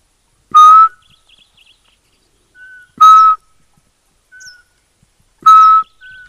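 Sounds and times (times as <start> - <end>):
faint small-bird chirps: 0.5 - 3.5, 4.2 - 4.8, 5.4 - 6.2
person whistling imitation of Eurasian pygmy owl call: 0.6 - 1.1, 2.6 - 3.4, 5.4 - 6.2.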